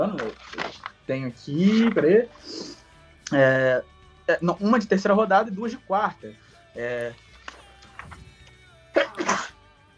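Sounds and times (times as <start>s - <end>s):
speech: 1.1s - 7.2s
sneeze caused by allergy: 9.0s - 9.6s.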